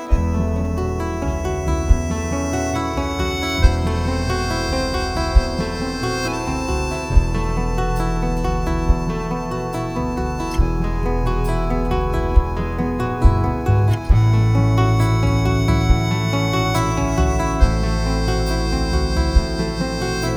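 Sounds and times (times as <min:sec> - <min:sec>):
tom-tom drum groove: 0:00.1 - 0:20.3.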